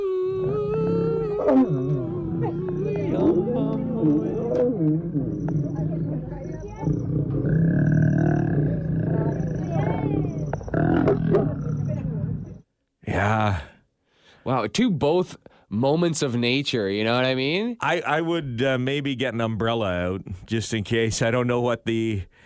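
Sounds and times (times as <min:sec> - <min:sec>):
lions roaring and grunting while mating: 0:00.4 - 0:12.6
speech: 0:14.4 - 0:22.4.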